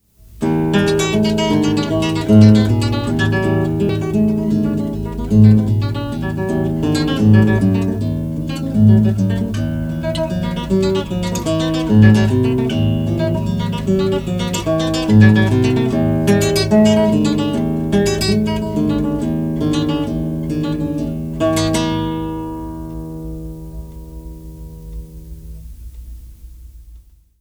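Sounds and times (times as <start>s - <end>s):
guitar piece: 0.0s - 27.0s.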